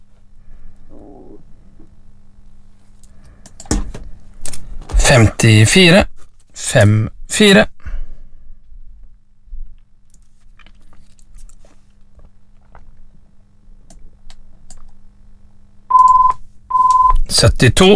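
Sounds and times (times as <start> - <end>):
speech: 5.1 - 6.1, 6.7 - 7.7, 17.4 - 17.9
soft handling noises: 9.6 - 13.1
telephone ringing with loud electronic tone: 15.9 - 17.2.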